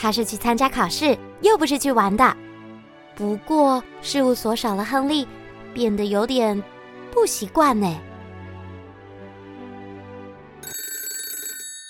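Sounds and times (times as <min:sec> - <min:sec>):
speech: 0:00.0 - 0:02.4, 0:03.2 - 0:08.1
soft sustained music: 0:00.0 - 0:10.6
telephone ringing in a detective agency office: 0:10.6 - 0:11.8.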